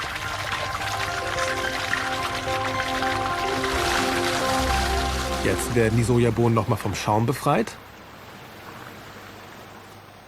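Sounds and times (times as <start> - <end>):
excess water draining from soaked soybeans in a factory: 0.0 - 7.1
speech: 5.4 - 7.9.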